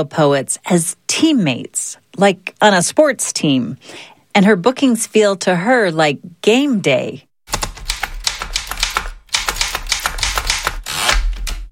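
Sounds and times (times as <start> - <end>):
speech: 0.0 - 7.3
typewriter keys clacking: 7.5 - 11.7.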